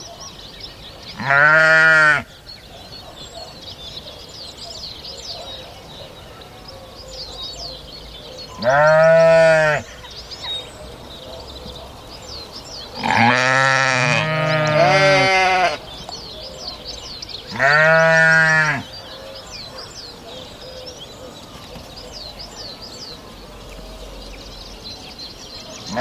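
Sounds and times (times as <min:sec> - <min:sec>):
small birds chirping: 0:00.0 - 0:25.9
sheep bleating in long wavering cries: 0:01.2 - 0:02.3, 0:08.6 - 0:09.9, 0:13.0 - 0:15.8, 0:17.5 - 0:18.8.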